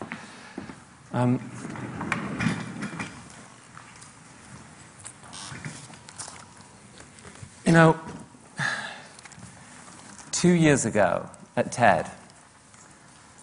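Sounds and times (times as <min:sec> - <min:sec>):
chair being lifted and set down with a scraping squeal: 0:00.6 - 0:03.5, 0:05.3 - 0:06.0
speech: 0:01.2 - 0:01.8, 0:07.7 - 0:08.1, 0:10.4 - 0:12.2.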